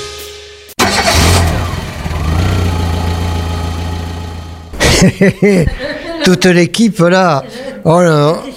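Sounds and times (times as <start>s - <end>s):
Simca Ariane car engine starting and running: 0.8s - 4.8s
laughter: 4.7s - 6.5s
speech: 5.0s - 8.5s.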